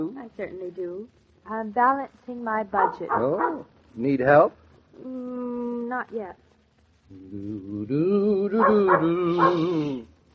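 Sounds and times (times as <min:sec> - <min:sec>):
speech: 0:00.0 - 0:06.5, 0:07.1 - 0:10.1
dog howling: 0:02.8 - 0:03.7, 0:08.5 - 0:10.0.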